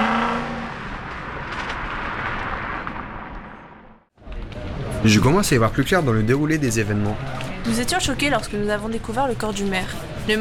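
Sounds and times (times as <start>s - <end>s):
car engine roaring as the vehicle pulls away at night: 0.0s - 5.0s
speech: 5.0s - 10.3s.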